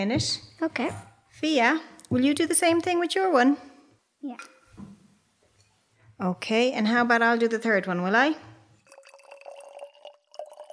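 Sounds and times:
speech: 0.0s - 4.9s, 6.2s - 8.5s
water pouring into a jug: 8.8s - 10.7s.

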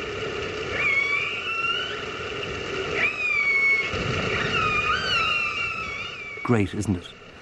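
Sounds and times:
constant hiss of hydrophone noise: 0.0s - 7.4s
killer whales calling underwater: 0.5s - 7.2s
speech: 6.5s - 7.2s.

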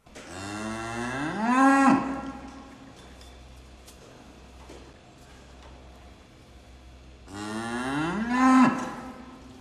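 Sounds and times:
cow mooing: 0.3s - 2.6s, 7.3s - 9.4s.

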